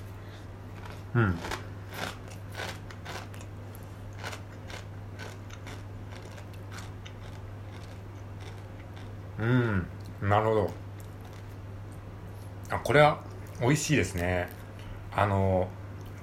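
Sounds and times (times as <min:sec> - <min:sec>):
low steady hum: 0:00.0 - 0:16.2
crunchy bites into dry uncooked curry-flavoured instant chicken ramen: 0:00.8 - 0:03.5, 0:04.1 - 0:09.1
speech: 0:01.2 - 0:01.6, 0:09.4 - 0:10.8, 0:12.9 - 0:14.6, 0:15.2 - 0:16.2.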